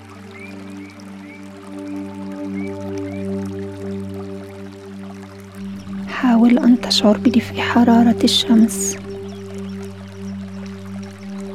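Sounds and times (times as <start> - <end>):
trickling stream water flowing: 0.0 - 11.5
sustained low droning tone: 5.6 - 11.5
speech: 6.2 - 9.1.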